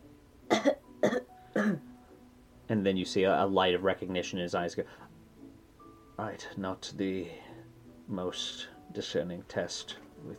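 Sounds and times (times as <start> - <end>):
person coughing during a stethoscope check of the back: 0.5 - 1.8
speech: 1.1 - 1.8, 2.7 - 5.1, 6.2 - 7.5, 8.1 - 10.3.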